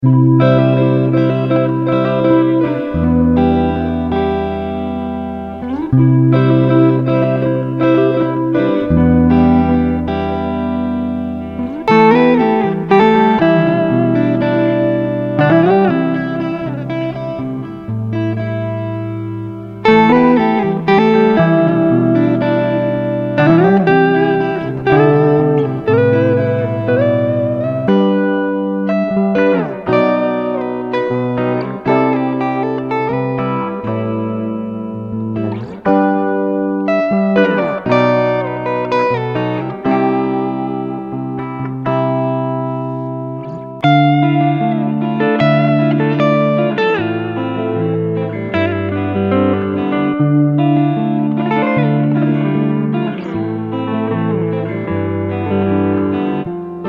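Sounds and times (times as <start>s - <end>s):
emotive indie electric guitars: 0.0s - 56.8s.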